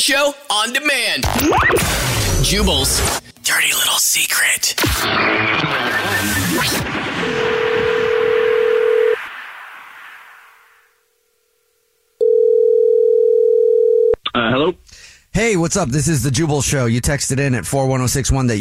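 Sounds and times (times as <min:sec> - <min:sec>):
speech: 0:00.0 - 0:07.6, 0:15.4 - 0:18.5
telephone line tone of a call being dialed: 0:07.4 - 0:09.2, 0:12.2 - 0:14.2.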